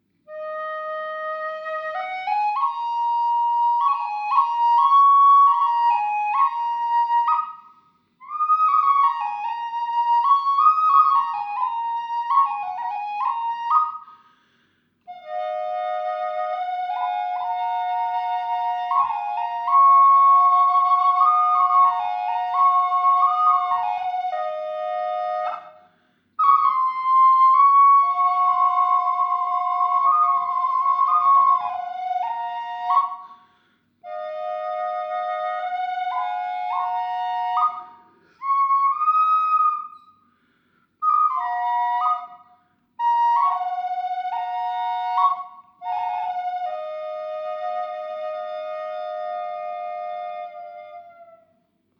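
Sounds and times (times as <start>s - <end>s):
Lakota flute drone in key of mi high: 0.0s - 14.2s, 15.1s - 33.4s, 34.0s - 40.2s, 41.0s - 51.6s.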